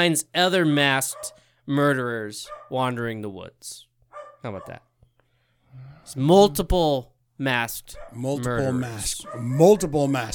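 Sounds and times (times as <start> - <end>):
speech: 0.0 - 4.9, 5.8 - 10.3
dog barking excitedly: 1.0 - 1.4, 2.4 - 2.8, 4.1 - 4.8, 7.9 - 10.3.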